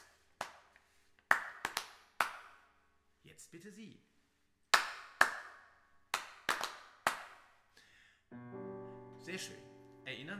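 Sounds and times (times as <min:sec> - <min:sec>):
hand claps in a quiet room: 0:00.0 - 0:02.6, 0:04.8 - 0:07.4
speech: 0:03.4 - 0:04.1, 0:09.3 - 0:10.3.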